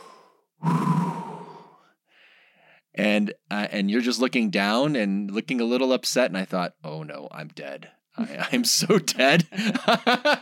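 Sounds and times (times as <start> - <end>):
person taking a deep breath: 0.0 - 2.5
speech: 3.0 - 10.4.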